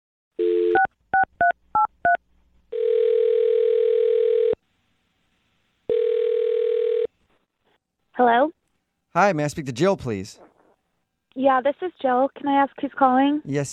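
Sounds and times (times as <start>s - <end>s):
brief phone tone: 0.4s - 1.3s, 2.7s - 4.6s, 5.9s - 7.1s
speech: 9.2s - 10.4s, 11.4s - 13.7s.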